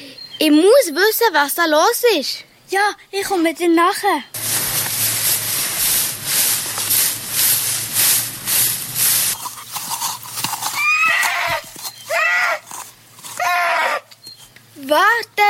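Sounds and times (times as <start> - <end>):
speech: 0.4 - 4.4
loud rhythmic thudding: 4.4 - 10.4
horse neighing: 10.5 - 14.1.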